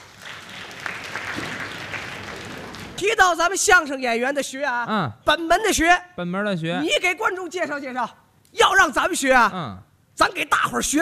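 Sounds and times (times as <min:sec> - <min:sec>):
audience applause at a crosstalk comedy show: 0:00.0 - 0:03.0
speech: 0:03.0 - 0:11.0.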